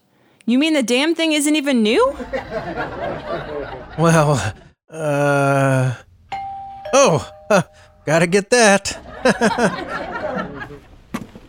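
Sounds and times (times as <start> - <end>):
speech: 0.5 - 6.0, 6.9 - 10.1
laughter: 2.0 - 5.9, 8.6 - 11.0
brief voiced groan: 4.0 - 6.1, 7.0 - 7.8
doorbell ringing: 6.3 - 8.2.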